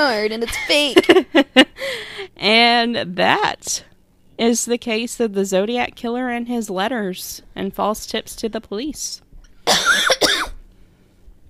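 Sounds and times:
speech: 0:00.0 - 0:10.2
loud harsh coughs: 0:09.6 - 0:10.6.

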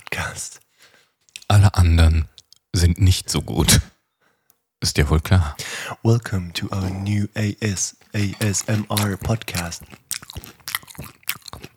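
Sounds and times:
speech: 0:00.4 - 0:00.6, 0:01.5 - 0:03.9, 0:04.8 - 0:11.1
man crunching and chewing a meal: 0:01.2 - 0:01.5, 0:07.8 - 0:11.7
wet munching and smacking: 0:08.0 - 0:11.7.

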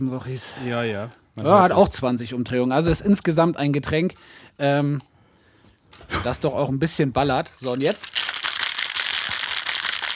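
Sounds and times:
speech: 0:00.0 - 0:05.1, 0:05.9 - 0:08.3
cold spray can shaken as a stand-in cocktail shaker: 0:07.6 - 0:10.1.

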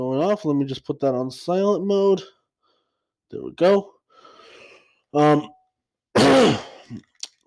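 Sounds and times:
speech: 0:00.0 - 0:02.4, 0:03.3 - 0:03.9, 0:05.1 - 0:05.6, 0:06.2 - 0:07.4
throat clearing: 0:06.2 - 0:07.2.

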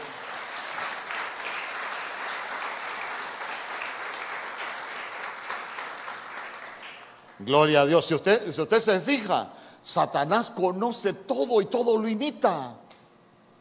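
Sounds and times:
audience clapping hands: 0:00.0 - 0:07.6
speech: 0:07.4 - 0:12.8.

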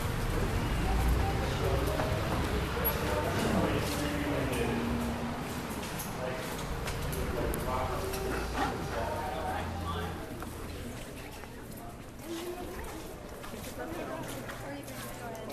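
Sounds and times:
rain falling: 0:00.0 - 0:08.3
voices: 0:00.0 - 0:15.5.

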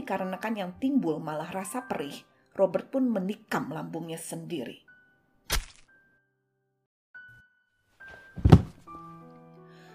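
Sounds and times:
speech: 0:00.1 - 0:04.9
body collapsing onto the floor with heavy dull thuds: 0:08.1 - 0:09.0.

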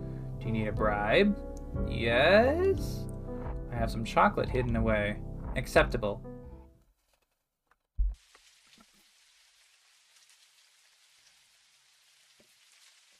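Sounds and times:
speech: 0:00.5 - 0:03.1, 0:03.7 - 0:06.3
low thump: 0:08.0 - 0:08.2
light rain falling: 0:08.1 - 0:13.1.

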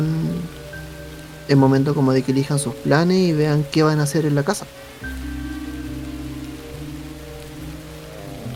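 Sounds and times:
steady rain falling at night: 0:00.0 - 0:08.5
speech: 0:01.5 - 0:05.1.

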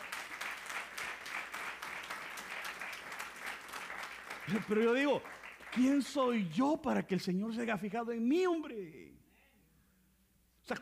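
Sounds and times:
audience applauding: 0:00.0 - 0:06.6
speech: 0:04.5 - 0:09.2.

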